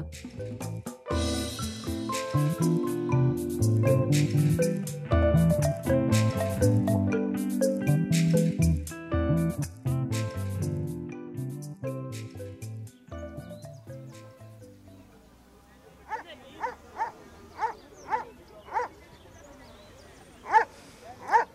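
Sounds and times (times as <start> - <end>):
music: 0.0 - 15.4
speech: 0.1 - 1.4
dog barking sharply: 16.1 - 19.0, 20.4 - 21.5.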